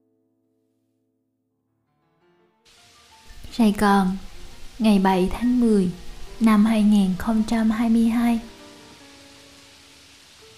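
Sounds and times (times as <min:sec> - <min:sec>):
heavy rain pouring on a metal roof: 0:02.7 - 0:10.5
speech: 0:03.6 - 0:08.5.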